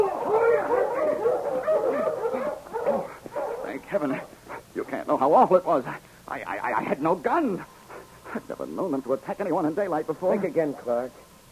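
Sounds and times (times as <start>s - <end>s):
pack of dogs barking and yipping excitedly: 0.0s - 4.8s
speech: 3.9s - 4.3s, 5.1s - 7.7s, 8.4s - 11.3s.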